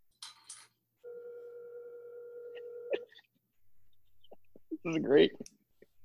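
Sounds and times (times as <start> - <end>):
phone call ringing on speakerphone: 1.0 - 3.1
speech: 4.8 - 5.6.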